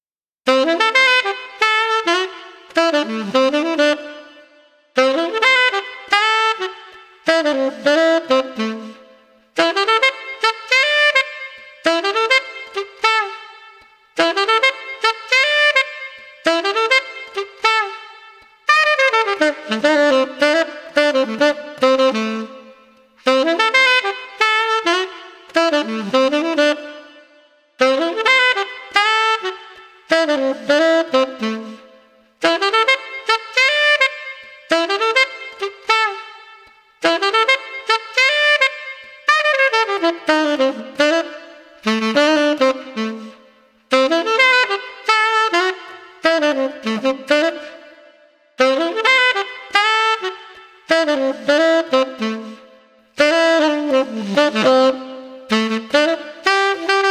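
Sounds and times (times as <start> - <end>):
exuberant street saxophone: 0.4 - 57.0.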